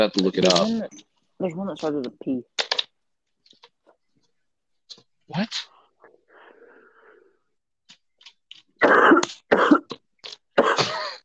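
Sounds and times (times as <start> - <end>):
speech: 0.0 - 2.5, 5.3 - 5.7, 8.8 - 9.7
harsh raspy coughing: 8.8 - 10.0, 10.6 - 11.2.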